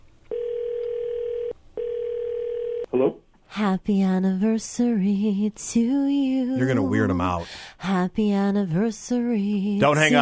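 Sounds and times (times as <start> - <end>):
telephone line ringing as a call is placed: 0.3 - 2.9
speech: 2.9 - 10.1.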